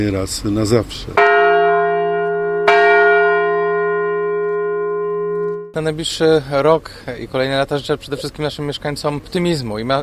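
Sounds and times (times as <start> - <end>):
speech: 0.0 - 1.3, 5.8 - 10.0
peace bell on Plac Grunwaldzki being struck: 1.2 - 5.8.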